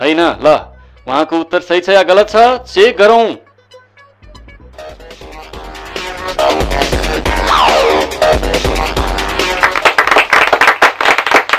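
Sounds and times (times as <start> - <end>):
speech: 0.0 - 3.4
music playing: 0.0 - 10.5
audience clapping at a quiz contest: 9.2 - 11.5.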